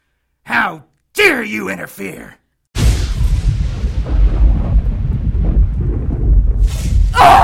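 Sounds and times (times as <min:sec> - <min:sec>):
speech: 0:00.6 - 0:02.4
heavy rolling low rumble: 0:02.8 - 0:07.4
lightning bolt striking a bullet in flight and exploding it: 0:02.8 - 0:07.4.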